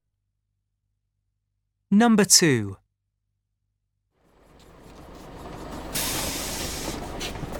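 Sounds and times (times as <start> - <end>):
speech: 1.9 - 2.8
bus engine rumbling: 4.2 - 7.5
bus air brake hiss: 5.9 - 7.4.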